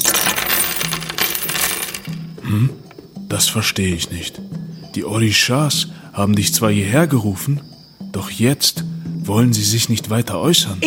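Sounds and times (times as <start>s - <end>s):
cowrie shells, stones and coins clattering onto a hard table: 0.0s - 3.1s
speech: 3.4s - 10.8s.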